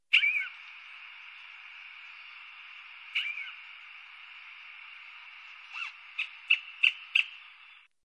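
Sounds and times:
cuckoo calling: 0.1 - 4.0, 5.6 - 7.9.

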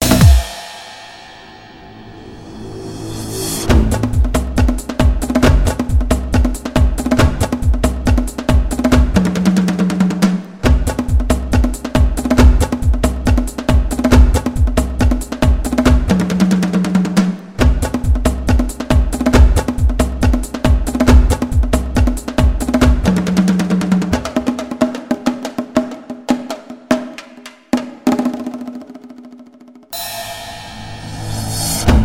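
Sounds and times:
drum sounds: 0.0 - 32.0.

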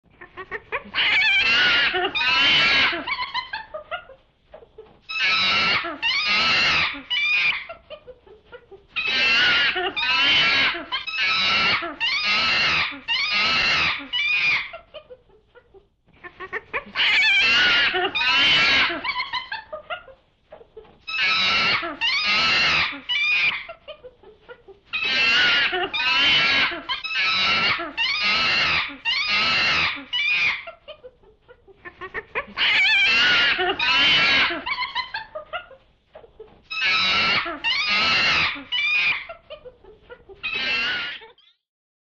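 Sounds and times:
chimpanzee calling: 0.2 - 4.2, 5.1 - 7.9, 9.0 - 15.0, 16.2 - 20.2, 21.0 - 24.1, 24.9 - 31.2, 31.8 - 35.8, 36.7 - 41.5.

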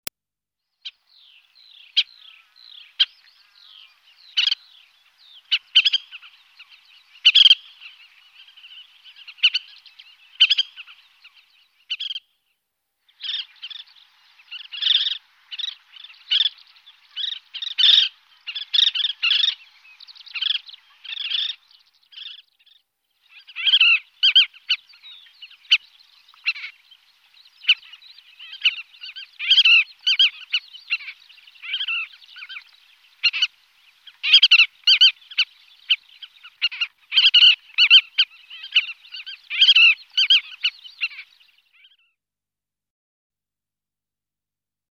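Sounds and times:
collared pratincole voice: 0.8 - 12.3, 13.1 - 42.0.

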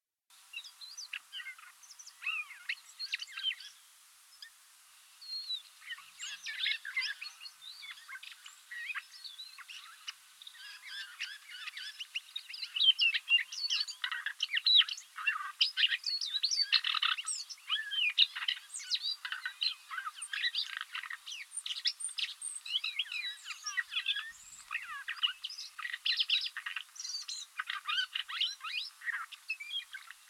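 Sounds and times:
Siberian rubythroat singing: 0.5 - 4.6, 5.2 - 30.2.

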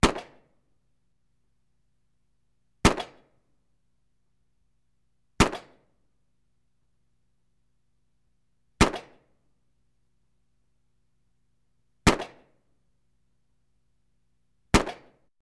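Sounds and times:
gunfire: 0.0 - 0.4, 5.4 - 5.8, 8.8 - 9.2, 12.1 - 12.5, 14.7 - 15.2.

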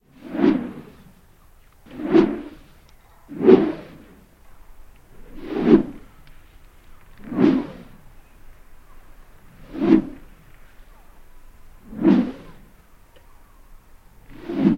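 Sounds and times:
swing whoosh: 0.1 - 1.1, 1.8 - 4.3, 5.1 - 6.2, 7.1 - 8.1, 9.5 - 10.4, 11.8 - 12.8, 14.2 - 14.7.

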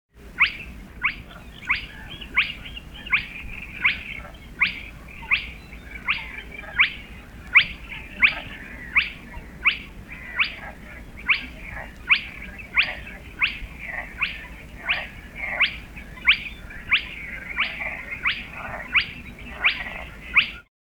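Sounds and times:
spotted crake calling: 0.2 - 20.7.

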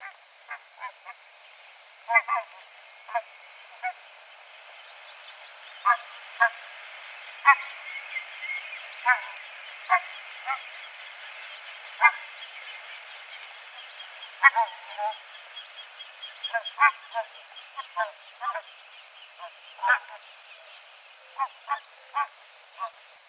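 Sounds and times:
bean goose calling: 0.0 - 1.2, 2.1 - 4.1, 5.7 - 15.4, 16.2 - 18.7, 19.4 - 20.2, 21.3 - 23.0.

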